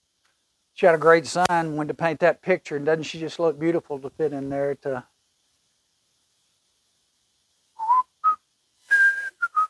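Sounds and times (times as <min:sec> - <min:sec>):
speech: 0:00.8 - 0:05.1
woman whistling a tune: 0:07.8 - 0:09.6.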